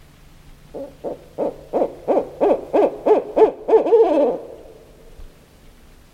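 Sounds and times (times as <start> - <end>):
barred owl calling: 0.7 - 4.9.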